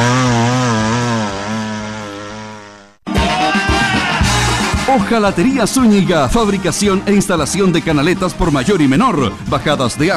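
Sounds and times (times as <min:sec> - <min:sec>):
chainsaw running: 0:00.0 - 0:04.9
speech: 0:05.0 - 0:10.1.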